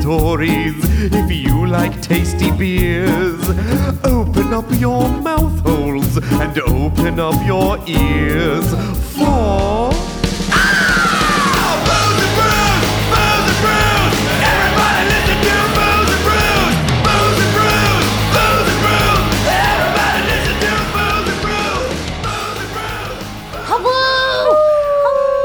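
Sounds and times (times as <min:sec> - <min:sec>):
speech: 0:00.1 - 0:10.1
group of people howling together like a wolf pack: 0:10.5 - 0:25.3.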